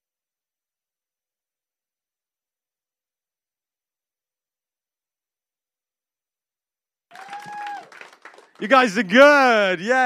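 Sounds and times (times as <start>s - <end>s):
sustained whoop: 7.1s - 8.0s
audience applause and cheering: 7.1s - 10.0s
speech: 8.6s - 10.0s.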